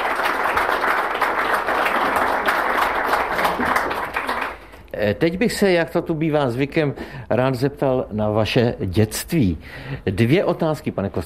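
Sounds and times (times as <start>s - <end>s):
audience applause: 0.0s - 4.8s
speech: 5.0s - 11.2s.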